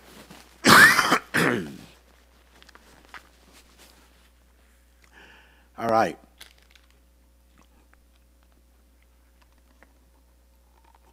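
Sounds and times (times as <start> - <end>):
harsh coughing: 0.6 - 2.0
throat clearing: 0.7 - 2.0
speech: 1.5 - 1.8, 5.8 - 6.3.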